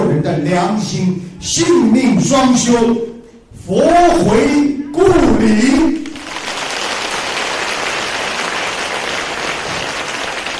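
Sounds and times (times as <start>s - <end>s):
speech: 0.2s - 3.1s, 3.7s - 6.0s
large crowd applauding: 6.2s - 10.5s.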